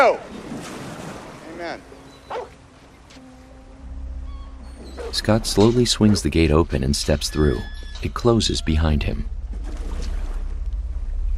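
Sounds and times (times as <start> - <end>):
speech: 0.0 - 0.4, 1.6 - 2.5, 5.0 - 9.4
dog yipping behind a gate: 2.1 - 2.6
low rumbling noise: 3.2 - 11.3.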